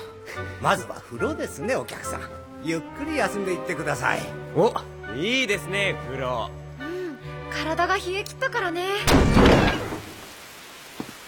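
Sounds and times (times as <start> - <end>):
speech: 0.6 - 6.6, 7.6 - 9.8
rain hiss: 9.7 - 11.2.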